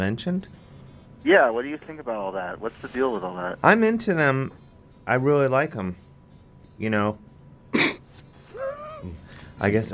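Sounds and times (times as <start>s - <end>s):
speech: 0.0s - 0.6s, 1.2s - 6.0s, 6.8s - 8.0s, 9.0s - 9.9s
person getting over a cold coughing: 7.7s - 8.0s
voiced throat-clearing hum: 7.7s - 9.3s.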